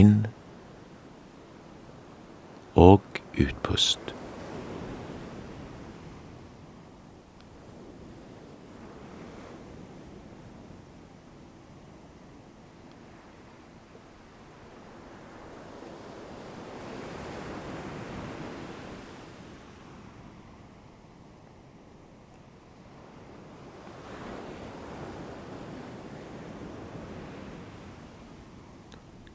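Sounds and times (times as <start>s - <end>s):
speech: 0.0s - 0.4s, 2.8s - 4.2s
ocean waves breaking on a shore: 0.0s - 29.3s.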